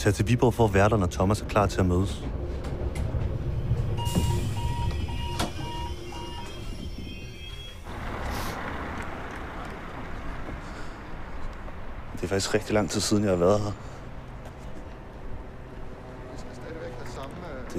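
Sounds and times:
speech: 0.0 - 2.4, 12.2 - 13.9
train rumbling and rattling while riding to the next station: 0.0 - 17.7
short tonal beeps: 4.0 - 7.8.

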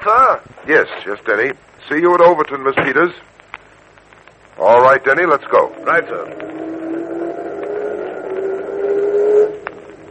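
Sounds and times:
speech: 0.3 - 3.4, 4.6 - 6.8
car engine revving as it pulls away: 4.7 - 10.1.

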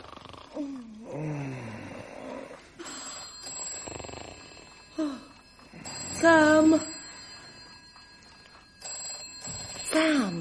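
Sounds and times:
telephone ringing: 2.8 - 10.4
speech: 6.2 - 6.9.

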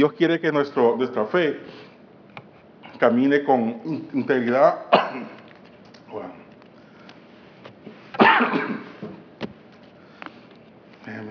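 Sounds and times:
speech: 0.0 - 1.9, 3.0 - 5.4
person clearing throat: 4.8 - 5.4, 8.2 - 9.0
person coughing: 4.8 - 5.4, 8.2 - 9.0.

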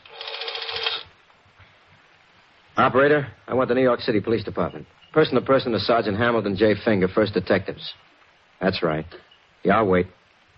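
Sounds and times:
rotary telephone dial turning in an office: 0.0 - 1.1
speech: 2.8 - 8.0, 8.6 - 10.2.

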